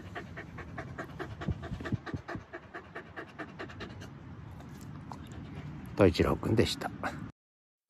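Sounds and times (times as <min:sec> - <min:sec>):
Hokkaido dog panting: 0:00.0 - 0:05.8
speech: 0:06.0 - 0:07.2.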